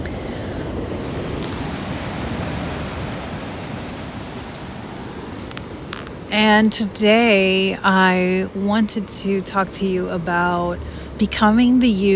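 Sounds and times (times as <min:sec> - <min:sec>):
Pacific Ocean surf washing onto the shore at Oceanside California: 0:00.0 - 0:08.2
speech: 0:06.3 - 0:12.1.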